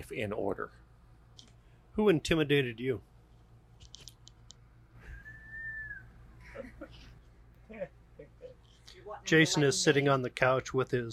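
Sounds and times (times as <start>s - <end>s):
low hum: 0.0s - 11.1s
speech: 0.1s - 0.9s, 2.0s - 3.1s, 9.1s - 11.1s
person whistling in surprise: 5.0s - 6.1s.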